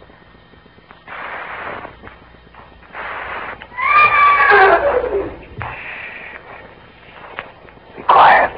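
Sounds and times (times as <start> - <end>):
horse whinnying: 3.7 - 5.4.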